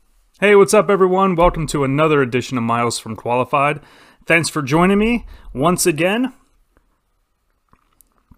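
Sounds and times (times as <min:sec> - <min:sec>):
speech: 0:00.4 - 0:06.4
sipping hot tea with a small slurp: 0:07.4 - 0:08.3
gulp: 0:07.5 - 0:08.3
soft wet mouth clicks: 0:07.5 - 0:08.3.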